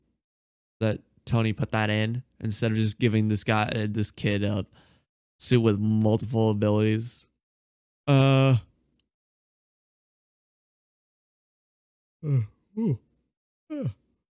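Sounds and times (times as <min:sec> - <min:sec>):
speech: 0:00.8 - 0:07.3, 0:08.1 - 0:08.7, 0:12.2 - 0:13.1, 0:13.7 - 0:14.0
short falling vocal groans: 0:08.1 - 0:08.6, 0:12.2 - 0:13.0, 0:13.7 - 0:14.0
loud drawn-out voiced yawn: 0:08.1 - 0:08.7, 0:12.2 - 0:13.0, 0:13.7 - 0:14.0.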